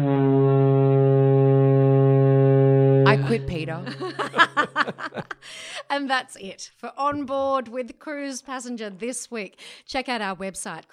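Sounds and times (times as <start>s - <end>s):
ship foghorn blast: 0.0s - 3.8s
laughter: 3.1s - 5.8s
speech: 3.4s - 10.9s.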